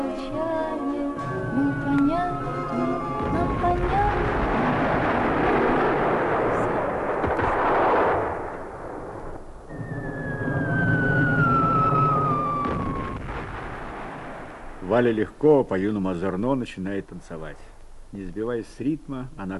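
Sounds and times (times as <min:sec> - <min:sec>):
sustained music-like harmonies: 0:00.0 - 0:04.9
long falling whistle-like tone: 0:01.2 - 0:03.6, 0:09.7 - 0:13.3
heavy rumbling explosions: 0:03.1 - 0:15.2
speech: 0:15.0 - 0:19.5.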